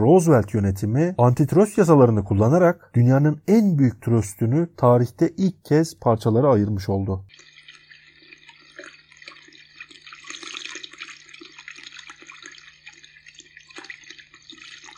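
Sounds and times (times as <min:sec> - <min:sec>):
speech: 0:00.0 - 0:07.5
water gushing out: 0:07.3 - 0:14.9.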